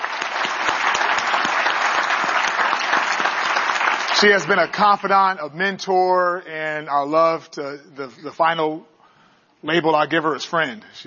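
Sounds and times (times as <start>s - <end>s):
audience applause: 0.0s - 5.0s
speech: 4.2s - 8.9s, 9.6s - 11.0s.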